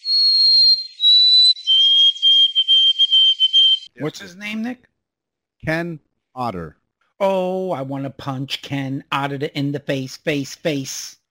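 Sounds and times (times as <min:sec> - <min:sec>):
White-throated Sparrow singing pure whistles in stuttering song variant: 0:00.0 - 0:03.9
speech: 0:04.0 - 0:05.0, 0:05.6 - 0:11.2.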